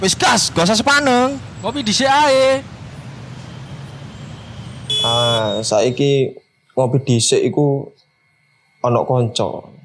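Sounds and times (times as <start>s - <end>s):
speech: 0.0s - 2.8s, 5.4s - 8.0s, 8.8s - 9.8s
idling cars and buses in a road traffic jam: 0.0s - 6.1s.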